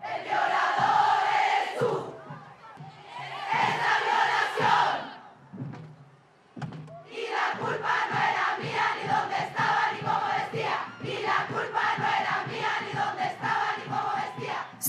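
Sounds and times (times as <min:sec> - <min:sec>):
large crowd chanting a Chilean feminist protest song: 0:00.0 - 0:05.4, 0:07.0 - 0:14.8.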